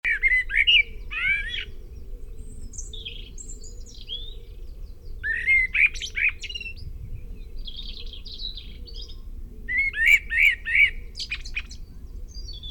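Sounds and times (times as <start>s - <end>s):
common blackbird Turdus merula singing: 0.1s - 12.6s.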